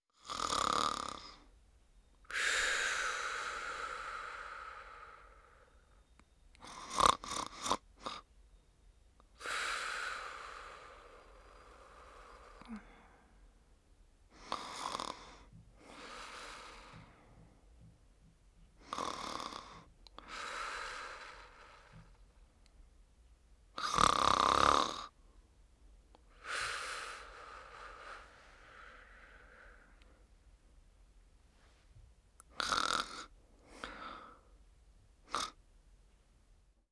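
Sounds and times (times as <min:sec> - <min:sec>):
woman snoring: 0:00.2 - 0:01.5, 0:02.3 - 0:05.8, 0:06.6 - 0:08.3, 0:09.4 - 0:13.3, 0:14.4 - 0:17.3, 0:18.8 - 0:22.2, 0:23.8 - 0:25.2, 0:26.3 - 0:30.1, 0:32.6 - 0:34.4, 0:35.3 - 0:35.6.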